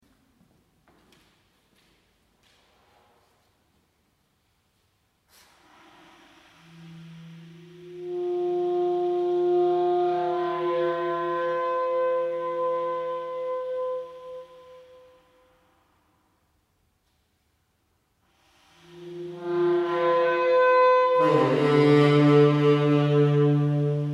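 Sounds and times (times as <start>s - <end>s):
saxophone: 5.3s - 15.8s, 18.3s - 24.1s.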